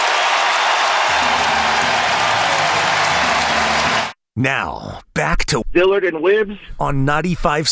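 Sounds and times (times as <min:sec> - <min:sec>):
ballpark crowd cheering after go-ahead hit: 0:00.0 - 0:04.2
stadium crowd applause: 0:00.0 - 0:04.2
speech: 0:04.4 - 0:07.6.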